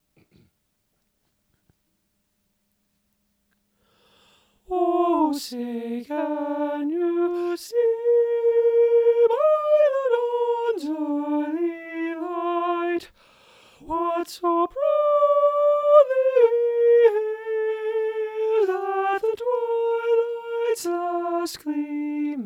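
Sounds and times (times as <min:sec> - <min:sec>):
choir singing high soprano: 0:04.7 - 0:13.1, 0:13.8 - 0:22.4.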